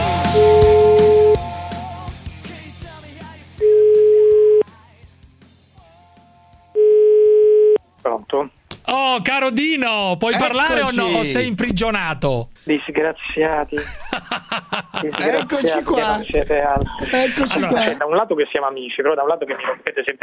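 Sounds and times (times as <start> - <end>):
outgoing telephone call ringing tone: 0.2 - 1.6, 3.6 - 4.6, 6.8 - 7.8
speech: 9.2 - 20.2
laughter: 13.7 - 16.3, 16.8 - 18.0.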